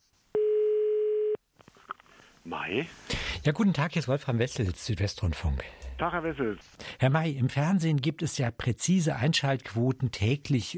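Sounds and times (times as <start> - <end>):
telephone ringing tone on an outgoing call: 0.4 - 1.4
speech: 2.4 - 10.7.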